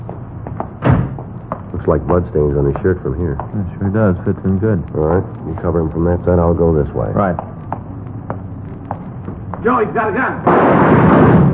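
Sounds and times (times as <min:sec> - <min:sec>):
speech: 0:01.8 - 0:07.6, 0:09.6 - 0:11.5
gunshots fired by a suspect at a man: 0:10.4 - 0:11.5
loud broadband blast: 0:10.4 - 0:11.5.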